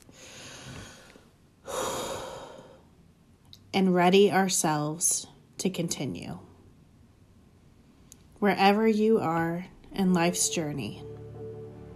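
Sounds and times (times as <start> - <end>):
deep breathing: 0.1 - 3.0
speech: 3.8 - 6.5, 8.4 - 11.1.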